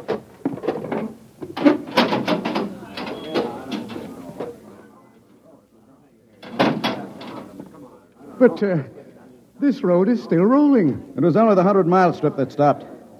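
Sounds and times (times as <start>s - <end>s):
heavy manhole access door hauled open with metallic clanks: 0.0s - 4.6s, 6.4s - 7.6s
speech: 8.4s - 9.0s, 9.6s - 12.9s.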